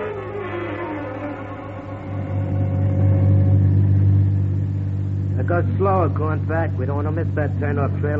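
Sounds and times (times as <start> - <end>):
car engine revving as the vehicle drives off: 0.1 - 8.1
speech: 5.7 - 8.1.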